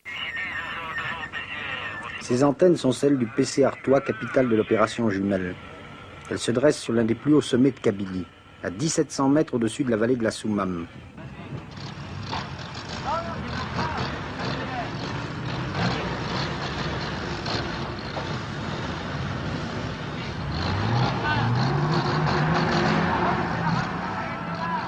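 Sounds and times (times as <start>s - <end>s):
French army helicopters: 0.0s - 22.2s, 23.0s - 24.8s
French army aircraft engines: 0.0s - 24.8s
French army trucks rumbling: 0.0s - 24.8s
speech: 2.2s - 5.7s, 6.3s - 11.2s
engine revving up: 4.1s - 24.8s.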